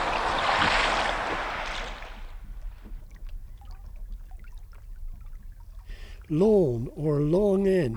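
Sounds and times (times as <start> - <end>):
rowing boat oars splashing through water as men row ashore at Chesil Beach: 0.0 - 4.1
water drips from rowing boat oars: 0.0 - 7.0
water lapping against a gliding rowing boat: 0.0 - 7.9
speech: 6.3 - 7.9.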